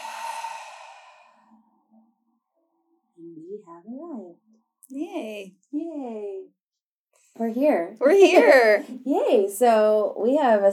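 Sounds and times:
long breathy exhale of a deep cleansing breath during a group breathing exercise: 0:00.0 - 0:01.8
speech: 0:03.6 - 0:06.5, 0:07.4 - 0:10.7.

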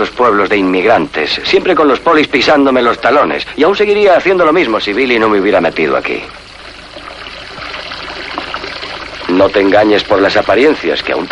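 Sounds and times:
speech: 0:00.0 - 0:06.5, 0:09.4 - 0:11.3
water running from a washbasin tap: 0:00.0 - 0:11.3.

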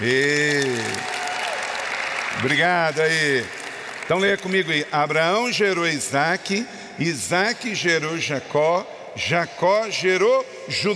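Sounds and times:
speech: 0:00.0 - 0:00.4, 0:02.4 - 0:10.9
applause from an audience: 0:00.0 - 0:04.8.

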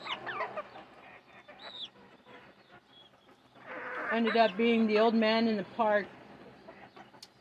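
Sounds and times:
several chickens clucking and squawking: 0:00.0 - 0:07.3
speech: 0:04.1 - 0:06.2.

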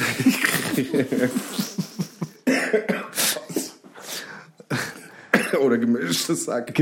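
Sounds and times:
laughter: 0:00.0 - 0:02.7
speech: 0:00.2 - 0:01.8, 0:05.6 - 0:06.8
person coughing with harsh breathy hacks: 0:02.4 - 0:03.8, 0:04.7 - 0:05.8.

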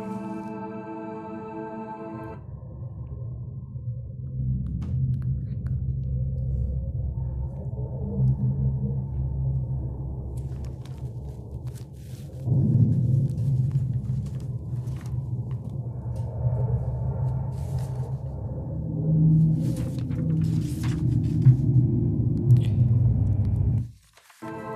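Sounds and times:
deep rumbling drone presented as the sound of planet Mars: 0:00.0 - 0:23.9.

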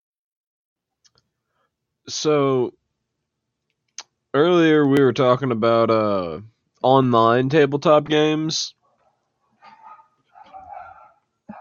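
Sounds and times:
speech: 0:02.1 - 0:02.8, 0:04.4 - 0:08.8
dogs barking and whining: 0:08.8 - 0:11.6.

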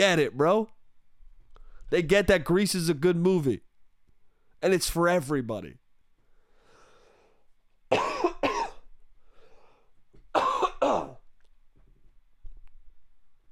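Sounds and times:
speech: 0:00.0 - 0:00.8, 0:01.9 - 0:03.6, 0:04.6 - 0:05.8
sharp double-hack coughs: 0:07.9 - 0:08.9, 0:10.3 - 0:11.2.

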